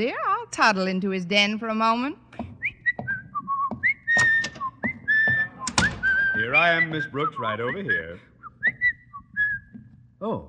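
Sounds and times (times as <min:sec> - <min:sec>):
speech: 0:00.0 - 0:02.2, 0:06.5 - 0:08.3, 0:10.2 - 0:10.4
person whistling clear high notes: 0:02.6 - 0:09.9.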